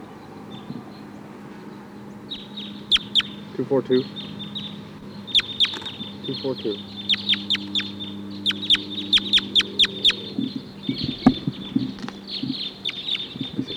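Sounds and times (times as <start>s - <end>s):
low hum: 0.0s - 13.7s
wild crossbill flock chittering in the treetops: 0.0s - 13.7s
speech: 3.6s - 4.3s, 6.3s - 7.0s.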